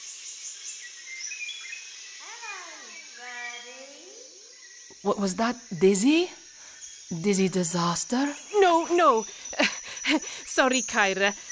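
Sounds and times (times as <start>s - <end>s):
dense chorus of buzzing insects in the Amazon jungle: 0.0s - 11.4s
speech: 4.9s - 6.4s, 7.1s - 11.4s
laughter: 8.9s - 10.4s.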